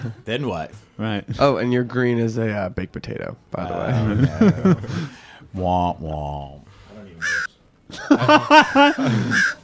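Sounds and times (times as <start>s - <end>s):
speech: 0.0s - 9.6s
laughter: 3.8s - 5.2s, 7.9s - 9.6s
crow cawing sound effect played from a sampler: 7.2s - 7.5s, 9.1s - 9.6s.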